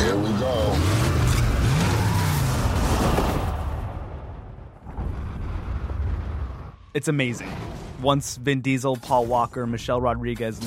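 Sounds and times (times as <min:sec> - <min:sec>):
roaring revving car engines: 0:00.0 - 0:03.9
heavy booming explosion blasts: 0:02.5 - 0:08.0
speech: 0:07.0 - 0:10.6.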